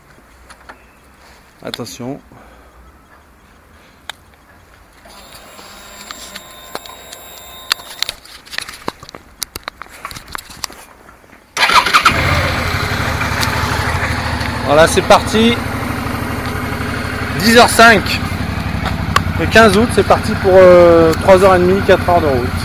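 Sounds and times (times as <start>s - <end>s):
speech: 1.6s - 2.5s, 14.7s - 15.7s, 17.4s - 18.3s, 19.4s - 22.6s
clicks: 5.0s - 10.8s
thin electronic whine: 5.1s - 8.1s
motorcycle engine starting and idling loudly: 5.1s - 8.2s, 11.6s - 22.6s.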